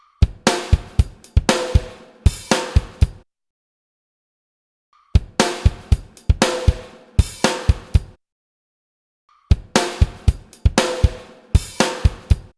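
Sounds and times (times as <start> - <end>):
drum pattern: 0.0 - 3.2, 5.2 - 8.2, 9.5 - 12.5.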